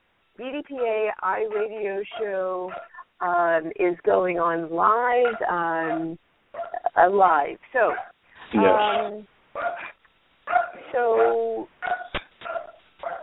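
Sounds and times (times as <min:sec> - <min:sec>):
speech: 0:00.4 - 0:06.3, 0:07.0 - 0:09.8, 0:10.9 - 0:12.0
dog barking and yelping over a phone line: 0:00.8 - 0:03.1, 0:05.1 - 0:06.9, 0:07.8 - 0:13.2.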